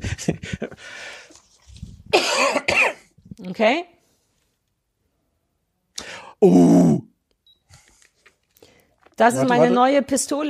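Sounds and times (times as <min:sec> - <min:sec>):
laughter: 0:00.0 - 0:00.9
person coughing: 0:02.1 - 0:03.1
speech: 0:03.6 - 0:04.0, 0:06.4 - 0:07.1, 0:09.2 - 0:10.4.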